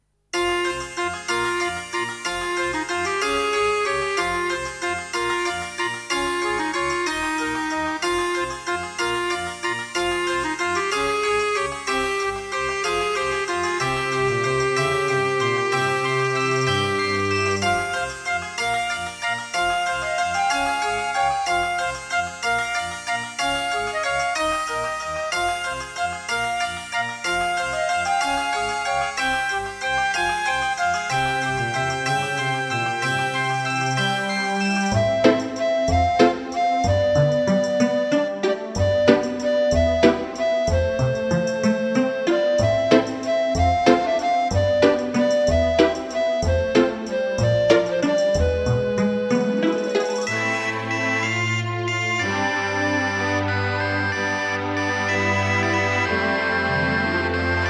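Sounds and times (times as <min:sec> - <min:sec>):
music track played on a Creative Sound Blaster AWE64 Gold sound card: 0:00.4 - 0:57.6.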